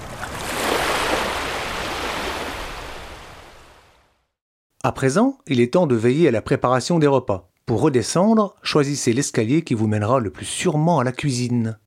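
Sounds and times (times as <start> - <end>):
sea waves surging against the outer stone wall of a castle: 0.0 - 3.7
speech: 4.8 - 11.8.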